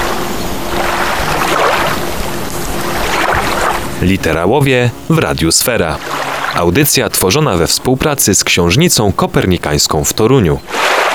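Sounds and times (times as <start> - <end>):
water sloshing and splashing: 0.7 - 3.8, 5.2 - 7.6, 10.6 - 11.1
speech: 4.0 - 11.1.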